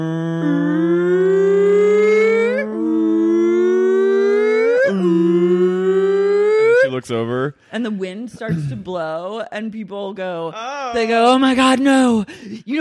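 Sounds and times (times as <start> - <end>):
voice imitating a hurricane siren: 0.0 - 7.0
speech: 7.1 - 12.7.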